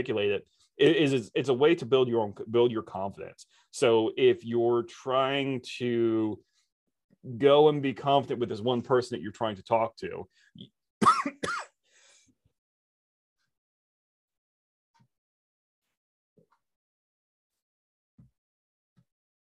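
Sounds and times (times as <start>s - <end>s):
speech: 0.0s - 6.5s, 7.2s - 11.6s
person coughing: 11.0s - 11.8s.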